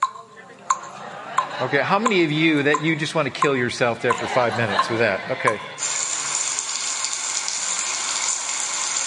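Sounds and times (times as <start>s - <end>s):
laughter: 0.4s - 5.8s
speech: 1.6s - 5.9s
steady hissing spray of shower water: 5.8s - 9.0s.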